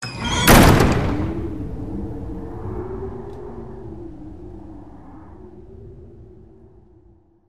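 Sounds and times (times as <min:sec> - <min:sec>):
wind: 0:00.0 - 0:07.4
wooden door slamming closed in a workshop: 0:00.2 - 0:01.5.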